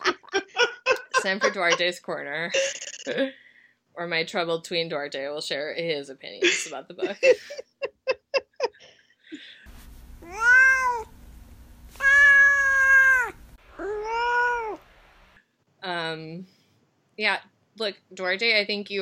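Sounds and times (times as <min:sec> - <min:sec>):
speech: 0:01.2 - 0:03.4, 0:04.0 - 0:07.7, 0:16.1 - 0:16.6, 0:17.2 - 0:19.0
cat meowing: 0:10.2 - 0:11.1, 0:12.0 - 0:14.8.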